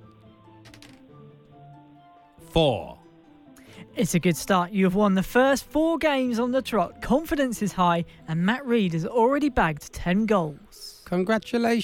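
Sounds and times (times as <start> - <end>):
dice rattling: 0.6 - 1.0
speech: 2.5 - 3.0, 4.0 - 11.8.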